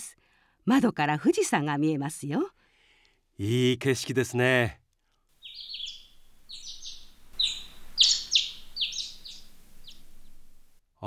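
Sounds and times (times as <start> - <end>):
speech: 0.7 - 2.6, 3.4 - 4.8
birds singing outside a room at a hot-spring inn: 5.4 - 10.8
faint low hum: 5.5 - 10.7.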